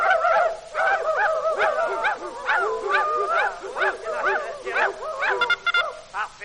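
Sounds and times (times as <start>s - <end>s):
several dogs barking: 0.0s - 6.1s.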